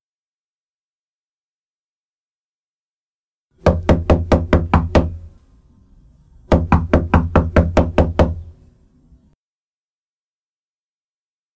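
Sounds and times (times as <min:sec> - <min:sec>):
firm knocking on a door: 0:03.6 - 0:05.3, 0:06.5 - 0:08.5.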